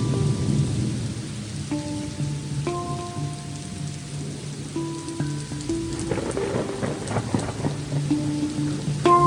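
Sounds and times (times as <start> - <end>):
low continuous rumble of thunder: 0.0 - 2.4, 5.8 - 9.2
soft sustained musical tones: 0.0 - 9.2
steady hissing rainfall in a thunderstorm: 0.0 - 9.2.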